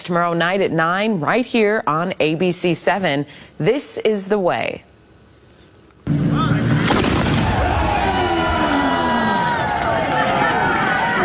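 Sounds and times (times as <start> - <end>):
speech: 0.1 - 4.9
cannon firing a ceremonial shot: 6.1 - 8.4
crowd noise and cheering: 7.1 - 11.2.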